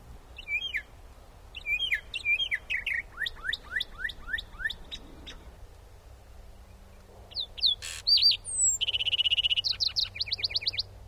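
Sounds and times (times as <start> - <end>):
lark sparrow singing on a light pole: 0.4 - 0.9, 1.5 - 5.5, 6.7 - 10.9
northern mockingbird singing varied repeated phrases: 1.6 - 5.5, 7.3 - 10.9.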